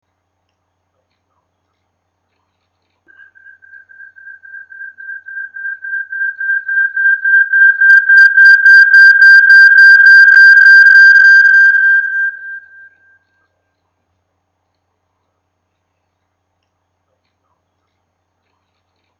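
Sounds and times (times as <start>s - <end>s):
electronic interference: 3.5s - 12.9s.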